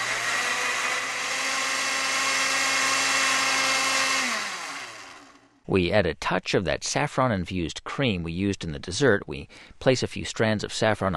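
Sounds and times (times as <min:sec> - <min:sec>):
kitchen blender motor whirring: 0:00.0 - 0:05.6
speech: 0:05.7 - 0:11.1.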